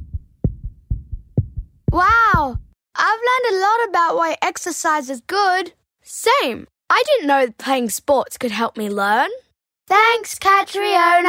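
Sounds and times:
rapid heartbeat thumping: 0.0 - 2.8
speech: 3.2 - 11.2.

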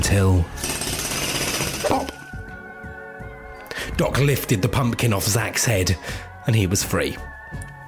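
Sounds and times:
speech: 0.1 - 0.6, 4.0 - 7.3
power tool grinding with rattling buzz: 0.6 - 2.2.

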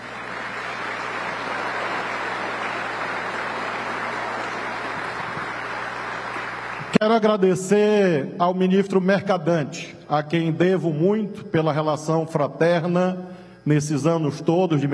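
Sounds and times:
large crowd applauding: 0.0 - 7.0
speech: 7.0 - 14.9.

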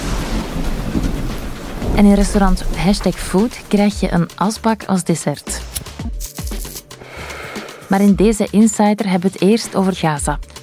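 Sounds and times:
heavy rain: 0.0 - 4.2
deep rolling thunder: 0.0 - 4.4
speech: 2.0 - 5.7, 7.9 - 10.5.

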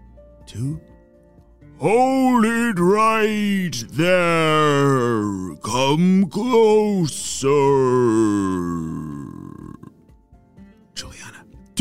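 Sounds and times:
speech: 0.5 - 0.9, 1.8 - 9.0
voice imitating a monster creature's growl: 4.4 - 5.9, 6.7 - 10.0.

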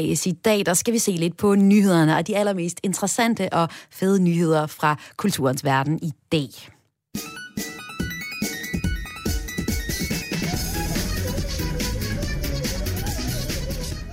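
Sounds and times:
speech: 0.0 - 7.3
bright fast chiptune meme song melody with electronic beeps and pulsing beat: 7.2 - 13.4.

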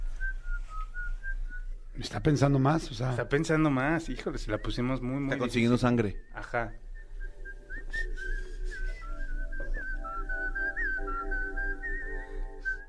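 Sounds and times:
person whistling a wavering melody: 0.0 - 1.9, 6.2 - 12.8
speech: 2.0 - 6.8
music with sustained tones and a low bass pulse: 5.6 - 12.8.

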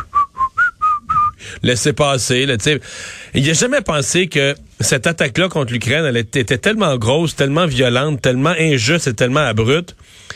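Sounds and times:
person whistling a short nonchalant tune: 0.0 - 1.4
speech: 1.6 - 10.3.

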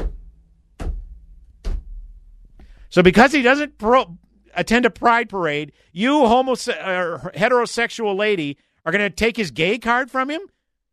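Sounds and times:
head banging against a hard surface: 0.0 - 2.2
speech: 2.9 - 10.5.

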